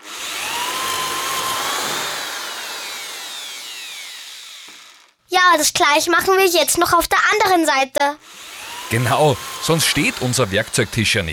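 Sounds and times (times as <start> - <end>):
power drill pre-drilling holes in wood: 0.0 - 5.2, 8.2 - 11.3
speech: 5.4 - 11.3.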